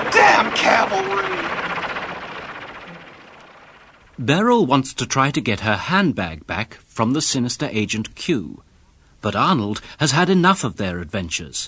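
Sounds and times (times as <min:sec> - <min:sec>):
helicopter hovering overhead: 0:00.0 - 0:06.0
speech: 0:00.4 - 0:01.6, 0:04.2 - 0:11.6.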